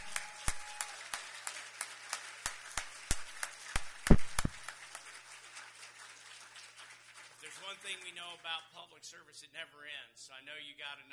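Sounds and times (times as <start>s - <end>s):
sparse audience applause: 0.0s - 8.6s
speech: 7.8s - 11.1s.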